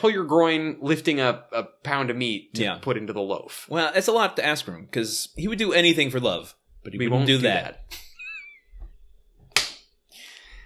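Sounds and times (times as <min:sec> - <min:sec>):
speech: 0:00.0 - 0:08.1
high five hand slap: 0:09.5 - 0:09.8.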